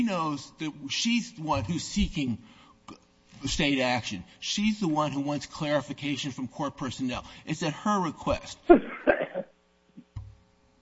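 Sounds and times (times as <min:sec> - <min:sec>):
speech: 0:00.0 - 0:09.5
faint throat sound: 0:08.7 - 0:09.5
short harsh cough: 0:08.7 - 0:09.6.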